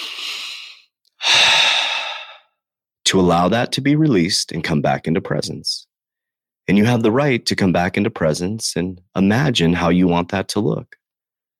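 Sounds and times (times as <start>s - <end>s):
deep breath: 0.0s - 2.6s
speech: 3.1s - 5.9s, 6.7s - 11.0s.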